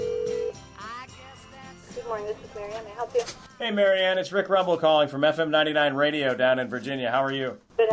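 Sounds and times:
telephone ringback tone on an outgoing call: 0.0s - 0.6s
speech: 2.1s - 7.9s.

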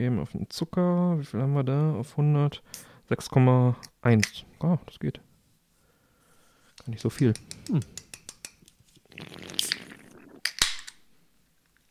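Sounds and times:
speech: 0.0s - 5.3s, 6.8s - 8.0s
carbonated drink container being cracked open with fizzy hiss and pop: 9.6s - 11.0s.

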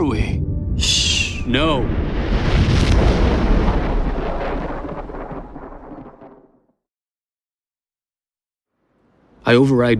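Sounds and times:
thunder crack and rumble from a lightning storm: 0.0s - 6.7s
speech: 1.5s - 2.0s, 9.5s - 9.9s.

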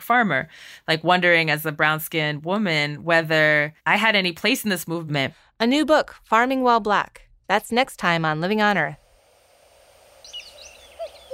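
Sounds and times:
speech: 0.1s - 9.0s
cuckoo hooting notes in rewilded pastures in West Sussex: 10.2s - 11.3s
nightingales and woodland birds chirping and whistling in rewilded pastures in West Sussex: 10.2s - 11.3s.

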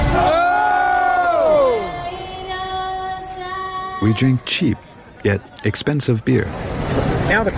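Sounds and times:
large stadium crowd shouting in unison: 0.1s - 2.0s
speech: 4.0s - 7.5s.

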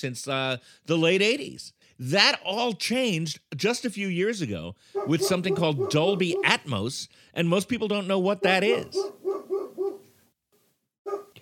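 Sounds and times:
speech: 0.0s - 9.2s
female dog barking under a porch: 5.0s - 6.6s, 8.4s - 10.1s, 11.1s - 11.3s.

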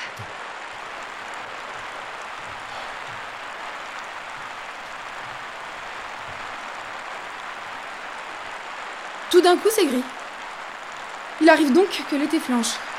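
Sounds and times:
sudden heavy rain downpour: 0.0s - 12.9s
speech: 9.3s - 10.2s, 11.4s - 12.9s.

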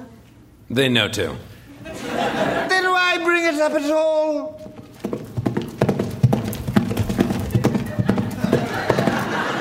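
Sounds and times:
speech: 0.7s - 1.5s, 3.5s - 4.6s
laughter: 1.7s - 3.1s, 7.5s - 9.5s
horse hooves clip-clopping: 4.6s - 9.5s.

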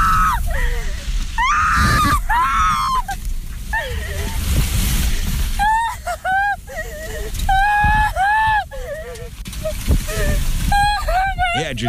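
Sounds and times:
woman screaming in terror inside car: 0.0s - 0.6s, 1.4s - 4.3s, 5.6s - 6.8s, 7.5s - 9.1s
low rumbling background: 0.0s - 11.8s.

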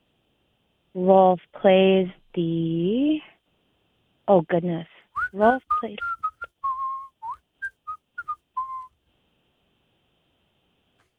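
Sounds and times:
speech: 1.0s - 3.3s, 4.3s - 6.1s
person whistling a short tune: 5.2s - 9.0s.

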